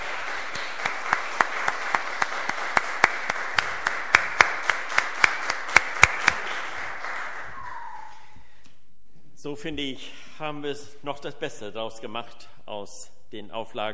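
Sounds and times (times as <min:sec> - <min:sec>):
applause from a small audience in a church: 0:00.0 - 0:08.3
speech: 0:09.5 - 0:13.9.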